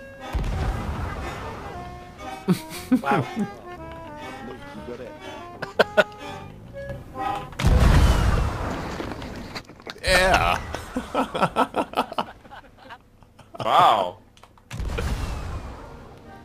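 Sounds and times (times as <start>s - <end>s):
cannon fire booms: 0.3s - 2.5s, 7.6s - 9.5s, 14.7s - 16.4s
people chuckling and chatting: 2.2s - 6.5s, 9.4s - 14.1s
speech: 2.4s - 3.6s, 11.2s - 11.8s.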